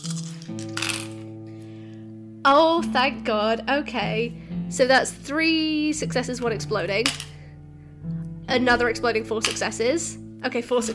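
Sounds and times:
six dice rattling and clattering: 0.0s - 1.3s
speech: 2.4s - 7.3s, 8.5s - 10.9s.

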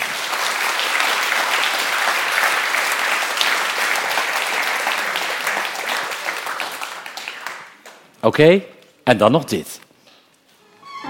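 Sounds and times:
audience applause: 0.0s - 8.0s
speech: 8.2s - 9.8s.

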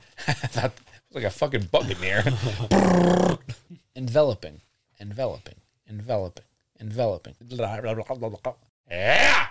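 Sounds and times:
speech: 0.3s - 9.5s
person imitating a growling dog: 2.7s - 3.5s, 8.9s - 9.5s.

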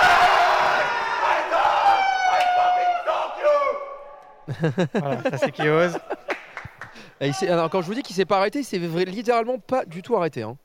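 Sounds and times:
two teams of people shouting and yelling in a hall: 0.0s - 4.5s
laughter: 4.4s - 7.8s
speech: 4.5s - 6.1s, 7.2s - 10.6s.

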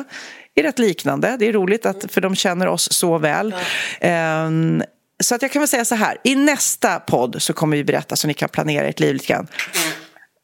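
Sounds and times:
speech: 0.0s - 10.0s
sneeze: 9.6s - 10.3s.

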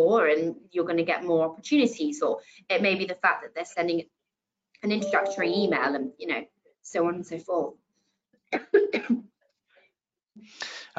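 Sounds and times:
speech: 0.0s - 4.2s, 4.8s - 7.8s, 8.5s - 9.3s, 10.4s - 10.9s
husky coughs: 8.6s - 9.3s.

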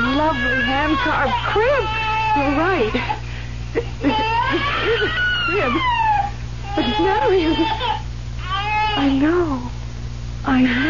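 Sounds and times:
baby crying in a hand-carved crib: 0.0s - 3.2s, 4.0s - 9.4s
constant low hum: 0.0s - 10.8s
speech: 0.3s - 6.0s, 6.8s - 8.0s, 9.0s - 9.8s, 10.4s - 10.8s.

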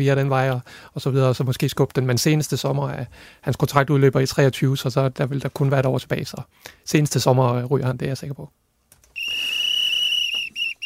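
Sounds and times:
speech: 0.0s - 8.6s
long shrill whistle blast: 9.2s - 10.8s.

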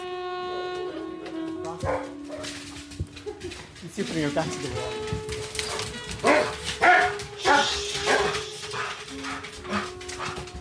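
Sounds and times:
dogs barking and whimpering during mating courtship: 1.7s - 3.8s, 4.7s - 10.5s
speech: 4.0s - 5.6s.

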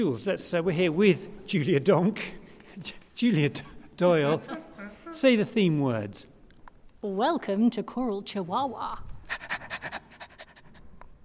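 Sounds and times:
speech: 0.0s - 6.4s, 7.0s - 9.5s
person imitating a dog's panting: 9.2s - 11.0s.

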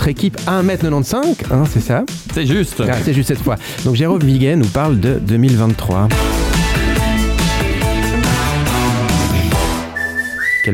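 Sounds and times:
speech: 0.0s - 6.4s
steady rhythmic instrumental backing: 0.0s - 10.5s
laughter: 2.6s - 3.5s
person whistling a tune: 9.7s - 10.7s.

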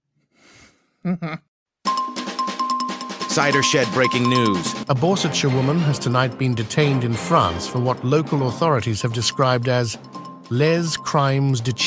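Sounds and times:
soft breathy sound: 0.2s - 1.0s
short vocal syllables: 1.0s - 1.4s
speech: 1.0s - 1.5s, 3.4s - 11.8s
bells ringing with a rapid pulsing jangle: 1.9s - 5.0s, 7.8s - 11.8s.

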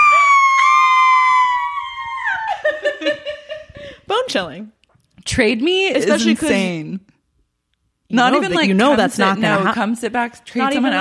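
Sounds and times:
loud piercing scream: 0.0s - 2.7s
speech: 4.3s - 7.1s, 8.1s - 11.0s.

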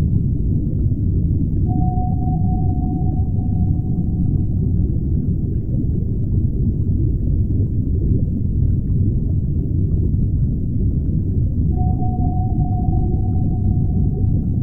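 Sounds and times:
submarine deep dense rumble: 0.0s - 14.6s
mid-pitched submarine sonar tone: 1.4s - 6.5s, 11.6s - 14.6s.

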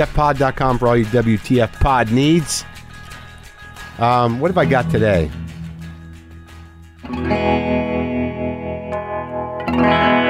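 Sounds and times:
speech: 0.0s - 2.7s, 4.0s - 5.4s
electric guitar chords through an effects pedal with distortion and reverb: 2.9s - 10.2s.

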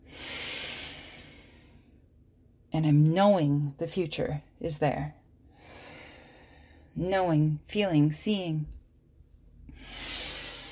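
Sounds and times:
slow soft breath during meditation: 0.0s - 2.0s, 5.5s - 6.9s, 9.7s - 10.6s
speech: 2.7s - 5.2s, 7.0s - 8.8s.

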